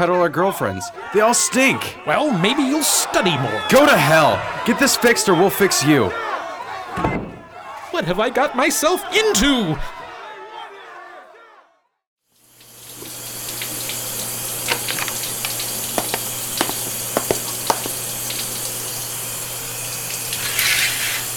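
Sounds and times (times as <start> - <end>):
speech: 0.0 - 7.3, 7.9 - 10.0
laughter: 0.7 - 10.9
running shower water: 12.4 - 21.3.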